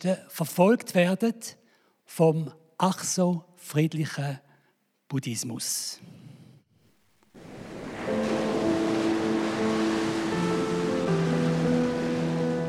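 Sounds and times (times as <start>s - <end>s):
speech: 0.0s - 4.4s, 5.1s - 6.2s
surf of the Indian Ocean breaking around Sri Lanka: 7.3s - 12.6s
sustained musical tones: 8.0s - 12.6s.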